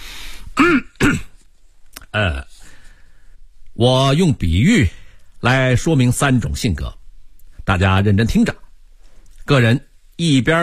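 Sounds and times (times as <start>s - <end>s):
man clearing his throat: 0.6s - 1.4s
speech: 2.2s - 2.5s, 3.8s - 7.0s, 7.7s - 8.6s, 9.5s - 10.6s.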